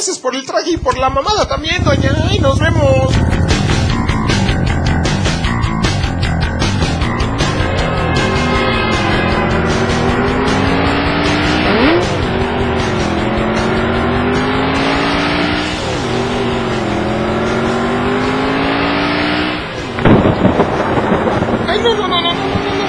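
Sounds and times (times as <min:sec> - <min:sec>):
speech: 0:00.0 - 0:03.6
loud deep rumble of thunder: 0:00.8 - 0:08.5, 0:19.9 - 0:22.8
motorcycle engine revving and racing away: 0:00.8 - 0:22.8.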